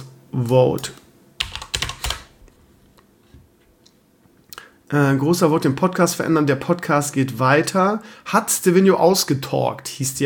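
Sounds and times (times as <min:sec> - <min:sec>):
speech: 0:00.4 - 0:01.0, 0:04.9 - 0:10.2
typing on a computer keyboard: 0:01.4 - 0:02.3.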